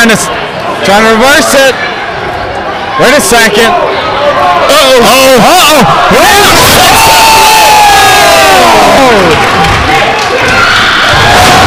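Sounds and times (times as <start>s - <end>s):
speech: 0.0s - 1.9s, 3.0s - 7.2s, 8.5s - 9.6s, 11.3s - 11.6s
pro wrestling crowd cheering and roaring: 3.0s - 11.6s
people shouting in a pro wrestling crowd: 3.8s - 11.6s.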